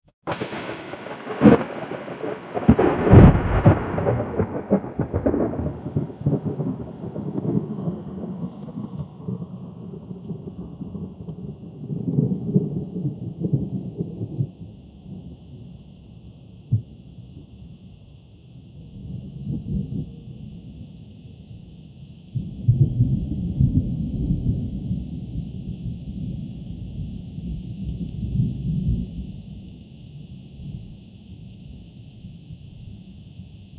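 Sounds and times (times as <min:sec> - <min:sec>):
thunder: 0:00.3 - 0:15.2, 0:22.4 - 0:29.8.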